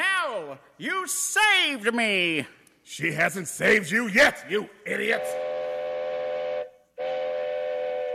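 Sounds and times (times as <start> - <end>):
speech: 0.6 - 5.5
loud sustained train whistle: 5.2 - 8.1.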